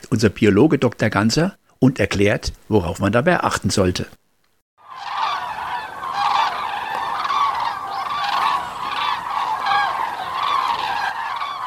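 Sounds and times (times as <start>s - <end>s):
speech: 0.1s - 4.2s
large flock of common cranes calling overhead during migration south: 4.8s - 11.6s.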